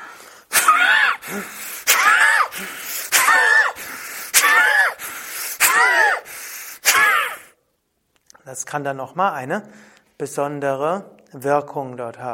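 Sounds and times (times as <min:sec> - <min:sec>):
forceful nasal breathing of a Bhastrika breathing exercise: 0:00.0 - 0:07.5
speech: 0:01.3 - 0:01.6, 0:08.5 - 0:12.3.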